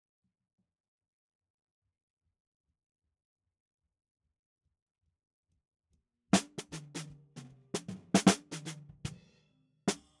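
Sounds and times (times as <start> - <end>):
snare drum bottom: 6.4 - 9.3.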